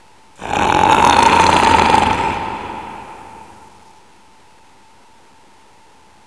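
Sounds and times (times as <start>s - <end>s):
ambience: 0.0s - 5.9s.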